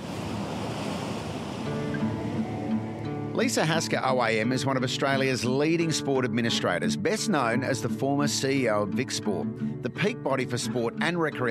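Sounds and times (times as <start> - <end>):
wind rumble: 0.0 - 3.4
ocean waves washing in surf: 0.0 - 11.4
speech: 3.4 - 11.4.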